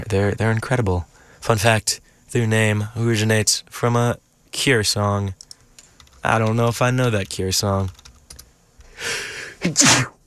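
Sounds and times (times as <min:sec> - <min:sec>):
speech: 0:00.0 - 0:05.4, 0:06.2 - 0:08.0, 0:09.0 - 0:10.2
single human sneeze: 0:09.0 - 0:10.2.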